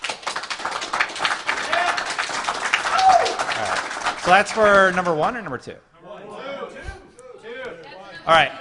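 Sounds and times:
small group clapping hands to vote: 0:00.0 - 0:05.4
speech: 0:04.3 - 0:06.3, 0:08.2 - 0:08.5.

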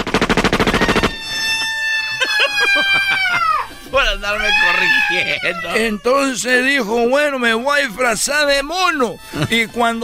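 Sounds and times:
firing squad gunfire volley: 0:00.0 - 0:01.2
sustained horn-like tone with quick warbling chirps: 0:00.8 - 0:02.9, 0:03.6 - 0:05.4
laughter: 0:02.1 - 0:03.8, 0:04.9 - 0:05.8, 0:09.3 - 0:09.8
speech: 0:04.1 - 0:10.0.

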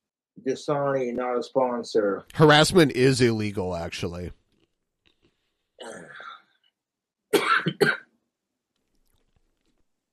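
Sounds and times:
speech: 0:00.4 - 0:04.4
person coughing after drinking water: 0:07.3 - 0:08.1.

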